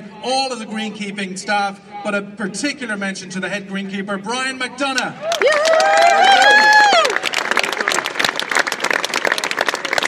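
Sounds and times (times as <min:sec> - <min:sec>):
speech: 0:00.2 - 0:07.2
crowd applause at a golf championship presentation: 0:05.2 - 0:10.0.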